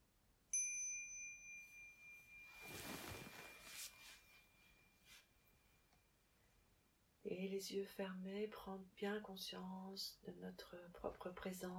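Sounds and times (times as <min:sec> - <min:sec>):
meditation bell struck and ringing: 0:00.5 - 0:05.6
soft rustling noise: 0:01.9 - 0:06.0
speech: 0:07.3 - 0:11.7.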